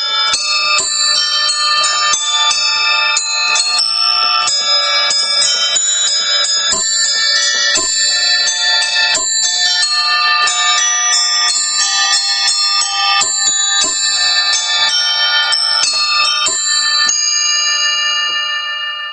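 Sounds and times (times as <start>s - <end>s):
homemade carillon bells playing a lively melody: 0.0s - 19.1s.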